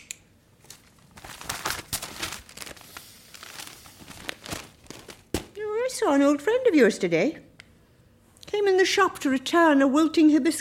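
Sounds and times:
newspaper pages rustling and crinkling while doing a crossword: 0.6s - 5.6s
speech: 6.0s - 7.5s, 8.6s - 10.5s.

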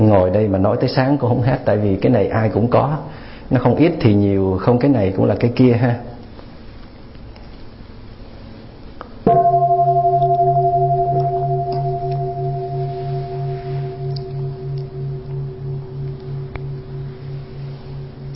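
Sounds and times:
speech: 0.1s - 6.2s
temple bell struck during meditation: 9.3s - 18.3s.

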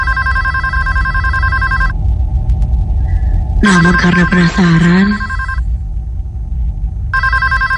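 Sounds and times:
telephone ringing: 0.0s - 1.9s, 5.0s - 5.6s, 7.2s - 7.7s
low rumble: 0.0s - 7.7s
speech: 3.6s - 5.3s.

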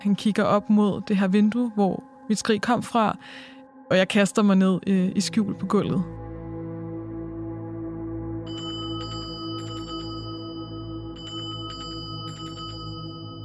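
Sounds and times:
speech: 0.0s - 6.2s
assembly bell calling people down to a chapel ringing: 8.5s - 13.4s.

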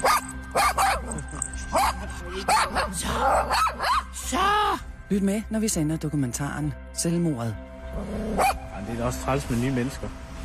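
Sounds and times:
female dog yipping and barking: 0.0s - 4.1s, 8.4s - 8.6s
speech: 2.2s - 4.5s, 5.1s - 10.2s.

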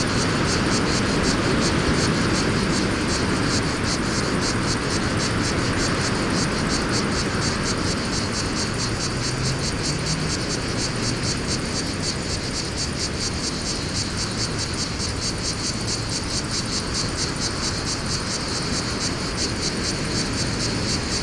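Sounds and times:
low engine hum of traffic: 0.0s - 12.6s
cicadas buzzing in a pine forest in Fontvieille, France: 0.0s - 21.2s.

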